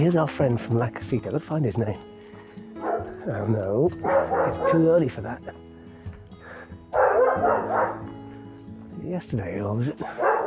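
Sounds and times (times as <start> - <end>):
speech: 0.0 - 2.2, 3.2 - 5.7, 9.0 - 10.4
faint yip of male neighbourhood dog: 2.8 - 3.2, 4.0 - 4.8, 7.0 - 8.1, 10.2 - 10.4
male neighbourhood dog barking: 2.8 - 3.2, 4.0 - 4.9, 6.9 - 8.1, 10.0 - 10.4.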